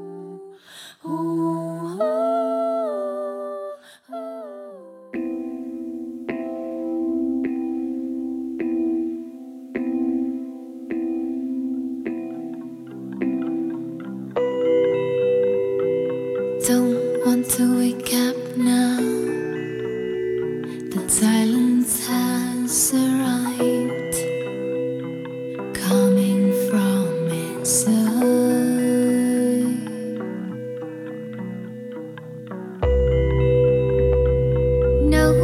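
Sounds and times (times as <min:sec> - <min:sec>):
slow melancholy English-language heartbreak song: 0:00.0 - 0:35.4.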